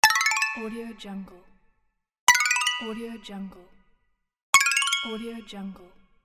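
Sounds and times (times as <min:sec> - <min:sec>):
basic game prize sound: 0:02.3 - 0:03.0, 0:04.6 - 0:05.3.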